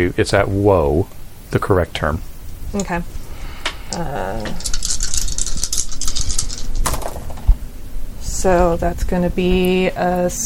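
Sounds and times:
speech: 0.0 - 3.2, 3.9 - 4.8, 8.4 - 10.4
dice clattering and tumbling across a hard surface: 4.6 - 7.6.

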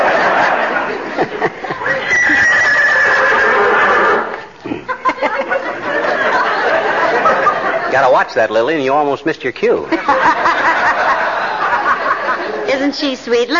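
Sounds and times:
laughter: 0.0 - 8.2, 9.8 - 12.8
horse whinnying: 1.8 - 4.4
speech: 8.2 - 10.5, 12.8 - 13.5.

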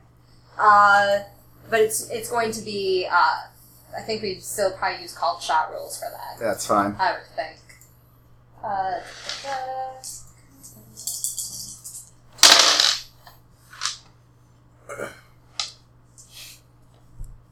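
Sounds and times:
speech: 0.6 - 7.6, 8.6 - 10.2, 14.9 - 15.2
dice clicking as they settle: 9.0 - 10.2, 12.4 - 13.1, 13.7 - 14.0
dice rattling across a hard table during a game: 9.0 - 13.1, 13.7 - 14.0.

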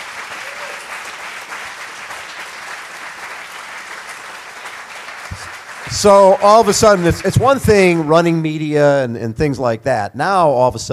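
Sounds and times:
crowd applauding: 0.0 - 8.7
speech: 5.4 - 10.9.

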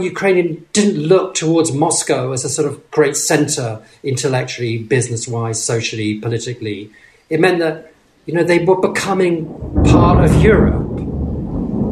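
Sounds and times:
speech: 0.0 - 11.1
thunder rumbling: 9.0 - 11.8.

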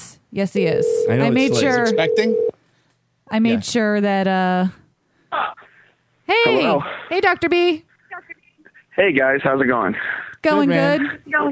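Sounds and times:
speech: 0.3 - 2.5, 3.3 - 5.6, 6.4 - 8.3, 9.0 - 11.5
telephone tones from a call being placed to a cell phone: 0.8 - 2.5.

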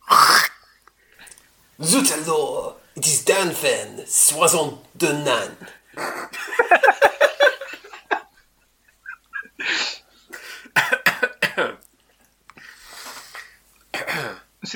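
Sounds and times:
speech: 1.8 - 7.0
laughter: 6.0 - 9.6
person coughing: 10.4 - 11.8, 14.0 - 14.5.

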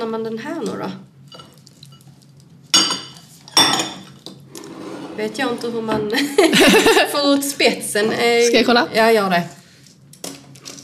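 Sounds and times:
speech: 0.0 - 1.1, 5.2 - 9.6
ceramic plates clattering as they are stacked: 2.8 - 5.3
laughter: 6.2 - 7.2.

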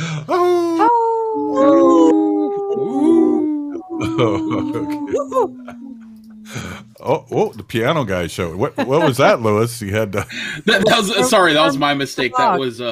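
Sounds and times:
several wolves howling in chorus: 0.8 - 7.1
laughter: 1.6 - 7.2, 8.6 - 12.4
speech: 4.2 - 6.0, 7.0 - 12.8.

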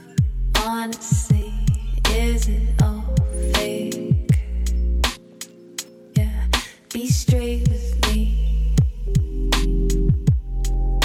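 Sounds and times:
speech: 0.6 - 1.5, 2.2 - 4.0
deep electrical hum: 1.3 - 3.6, 4.3 - 5.2, 6.2 - 6.6, 7.3 - 11.0.

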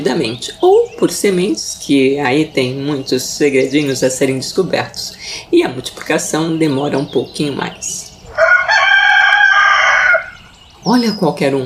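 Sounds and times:
speech: 0.0 - 8.0, 10.8 - 11.6
rooster crowing: 8.3 - 10.5.

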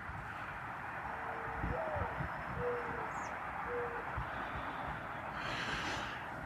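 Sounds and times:
steady outdoor hiss: 0.0 - 6.4
very common bird giving soft low owl-like hooting: 1.2 - 4.2.

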